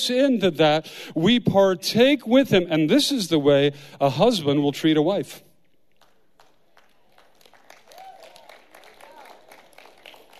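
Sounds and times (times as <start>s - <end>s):
speech: 0.0s - 5.5s
group of women clapping: 6.0s - 10.3s.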